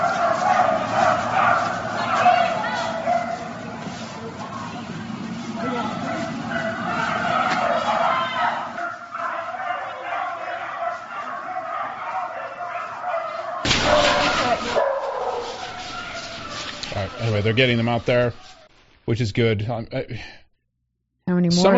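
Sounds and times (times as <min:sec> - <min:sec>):
dogs barking and whimpering: 0:00.0 - 0:18.7
speech: 0:17.4 - 0:20.4, 0:21.4 - 0:21.7.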